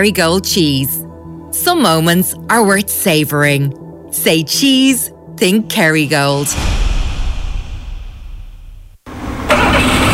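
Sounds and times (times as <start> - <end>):
speech: 0.0 - 6.8
Toyota Corolla car engine cranking and starting: 8.3 - 10.1.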